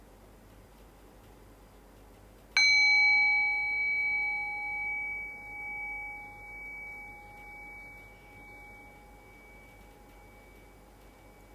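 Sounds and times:
meditation bell ringing: 2.6s - 11.5s.

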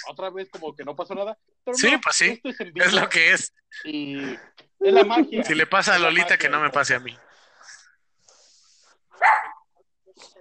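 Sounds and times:
speech: 0.0s - 7.3s
dog barking: 9.2s - 9.7s.

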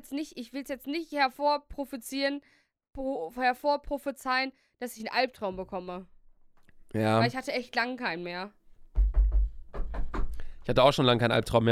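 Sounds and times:
speech: 0.0s - 6.2s, 6.9s - 8.6s, 10.6s - 11.7s
quick knocking on a wooden surface: 8.9s - 10.4s.

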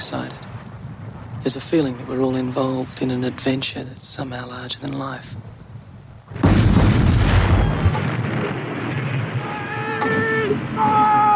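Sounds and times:
speech: 0.1s - 0.4s, 1.4s - 5.5s
sharp scattered gunshot cracks: 6.3s - 11.0s
heavy artillery blast with rumbling roar: 6.3s - 11.3s.

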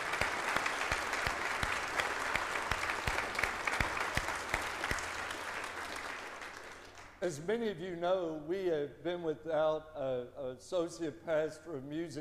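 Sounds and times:
audience applauding choir pianist and worship team: 0.0s - 7.2s
speech: 7.2s - 12.1s.

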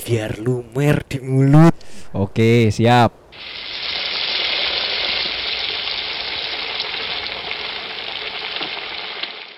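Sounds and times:
speech: 0.1s - 3.6s
fried noodles and sunny-side-up egg frying in a hot pan: 3.4s - 9.5s.

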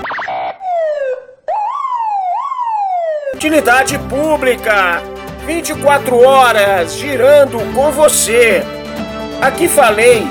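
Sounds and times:
loud electronic siren wailing: 0.0s - 3.4s
speech: 3.4s - 8.8s, 9.4s - 10.3s.

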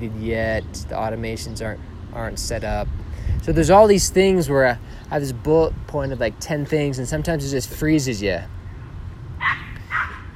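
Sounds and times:
speech: 0.0s - 8.6s
dog barks: 9.4s - 10.3s.

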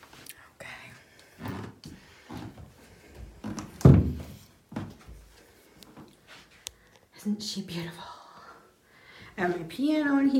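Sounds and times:
door of a new studio shutting with a solid low thunk: 3.8s - 4.4s
speech: 7.2s - 8.1s, 9.4s - 10.3s.

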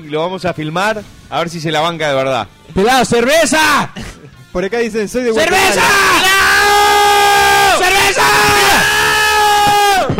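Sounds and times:
speech: 0.0s - 6.3s
people shouting loudly in a house: 5.4s - 10.1s.

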